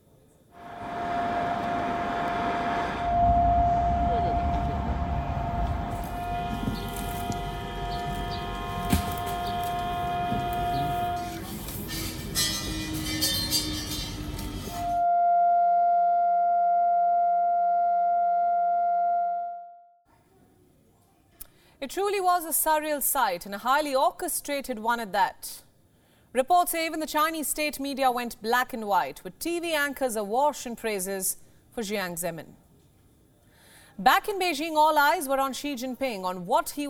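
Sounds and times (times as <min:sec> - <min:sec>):
air raid sirens wailing across a city: 0:00.6 - 0:11.6, 0:14.7 - 0:19.8
rumbling noisy city background: 0:00.6 - 0:13.2
speech: 0:21.9 - 0:25.6, 0:26.3 - 0:32.6, 0:34.0 - 0:36.8.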